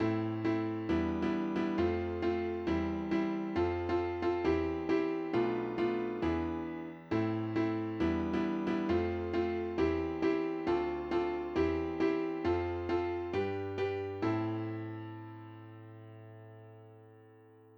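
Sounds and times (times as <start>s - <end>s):
piano chord: 0.0s - 17.7s.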